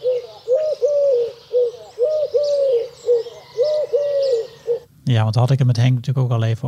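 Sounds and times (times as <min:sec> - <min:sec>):
Eurasian collared dove cooing three-part call: 0:00.0 - 0:04.9
faint birdsong: 0:00.0 - 0:05.9
speech: 0:05.1 - 0:06.6.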